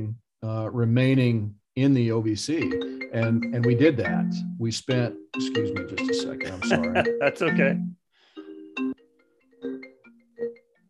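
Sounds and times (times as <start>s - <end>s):
speech: 0.0s - 8.0s
phone ringtone electronic melody: 2.6s - 10.8s
laughter: 6.4s - 7.5s.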